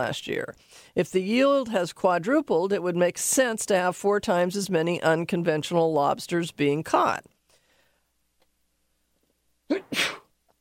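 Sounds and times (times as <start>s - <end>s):
speech: 0.0s - 7.3s, 9.7s - 10.2s
person sneezing: 9.7s - 10.3s.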